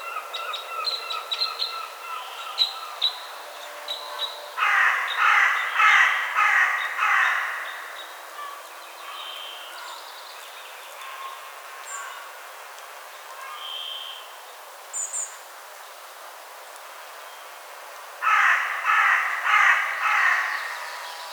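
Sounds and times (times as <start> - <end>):
Carrion crow Corvus corone cawing: 4.6 - 8.0, 18.2 - 21.0.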